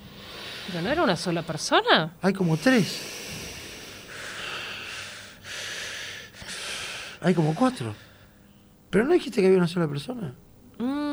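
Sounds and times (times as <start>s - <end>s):
deep heavy breathing: 0.0s - 1.7s, 2.4s - 8.6s
speech: 0.7s - 3.2s, 7.2s - 8.1s, 8.9s - 11.1s.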